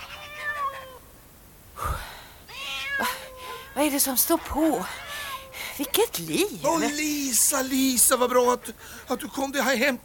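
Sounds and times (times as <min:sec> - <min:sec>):
cat meowing on a farmyard: 0:00.0 - 0:01.0, 0:02.5 - 0:03.8, 0:05.0 - 0:05.7
speech: 0:03.8 - 0:05.1, 0:05.8 - 0:10.0.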